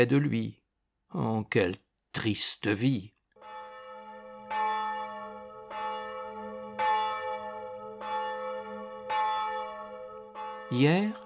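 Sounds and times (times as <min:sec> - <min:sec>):
speech: 0:00.0 - 0:03.2, 0:10.7 - 0:11.2
church bells ringing: 0:03.4 - 0:11.2.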